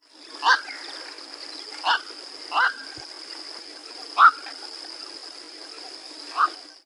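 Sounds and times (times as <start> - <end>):
garza bruja heron calling: 0.3 - 1.0, 1.6 - 3.0, 4.0 - 4.6, 5.8 - 6.7.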